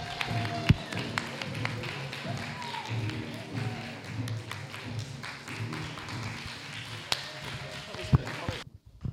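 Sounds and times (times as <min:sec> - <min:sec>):
audience clapping and applauding: 0:00.0 - 0:08.6.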